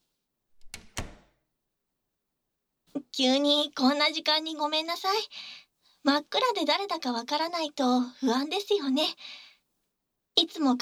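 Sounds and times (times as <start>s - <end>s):
hospital room sliding door shutting: 0.6s - 1.3s
hospital room door knocking against frame and latching: 0.6s - 1.4s
speech: 3.2s - 9.4s, 10.4s - 10.7s.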